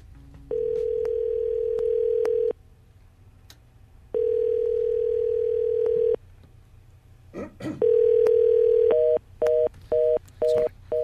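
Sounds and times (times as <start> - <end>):
telephone ringback tone from an unanswered call to an overloaded coronavirus symptoms number: 0.5 - 2.5, 4.2 - 6.2, 7.8 - 10.2.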